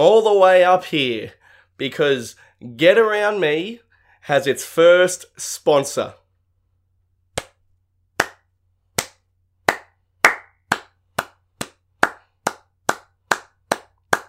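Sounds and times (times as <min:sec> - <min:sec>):
speech: 0:00.0 - 0:06.2
single person clapping: 0:07.4 - 0:07.6, 0:08.2 - 0:14.2.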